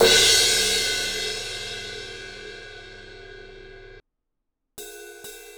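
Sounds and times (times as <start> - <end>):
18 inch HHX Evolution crash ride cymbal bell: 0.0 - 4.0.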